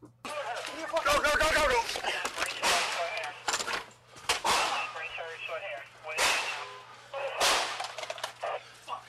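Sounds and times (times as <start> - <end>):
voices: 0.0 - 9.0
gunshots in the background of a police body camera recording: 2.5 - 3.2, 4.3 - 5.1, 6.1 - 8.3.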